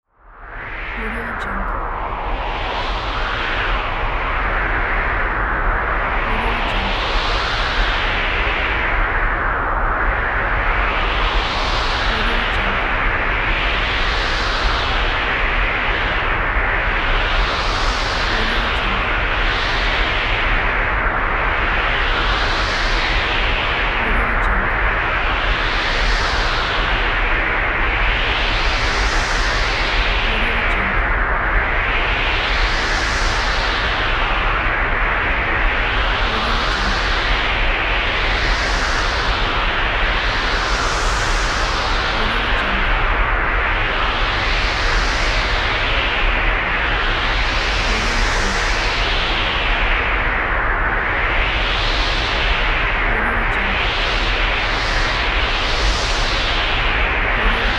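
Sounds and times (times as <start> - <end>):
wind: 0.0 - 57.7.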